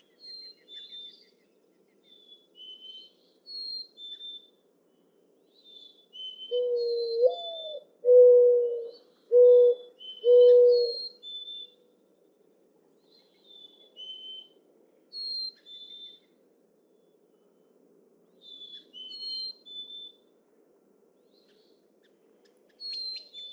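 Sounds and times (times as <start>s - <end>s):
mourning dove cooing: 6.5s - 11.0s.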